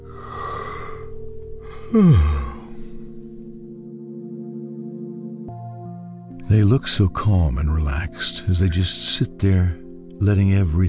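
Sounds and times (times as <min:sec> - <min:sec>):
long drawn-out yawn with groaning sigh: 0:00.2 - 0:03.1
speech: 0:01.9 - 0:02.4, 0:06.6 - 0:10.8.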